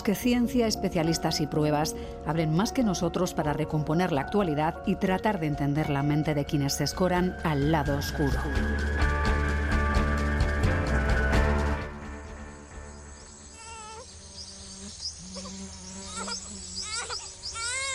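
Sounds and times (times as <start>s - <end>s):
speech: 0.0s - 9.1s
loud rapidly pulsing insect drone in the Peruvian Amazon rainforest: 8.1s - 17.9s
scattered chirping calls in the Peruvian Amazon rainforest: 12.6s - 17.9s.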